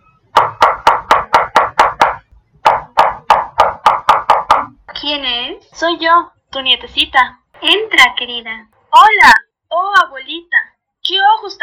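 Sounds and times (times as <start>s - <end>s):
sharp loud knocking on a door: 0.3s - 4.8s
speech: 5.0s - 11.6s.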